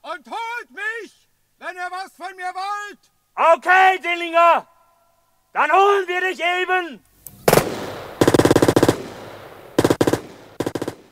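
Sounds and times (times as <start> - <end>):
speech: 1.9 - 4.7, 5.5 - 7.1
automatic gunfire in a shootout: 7.5 - 11.1.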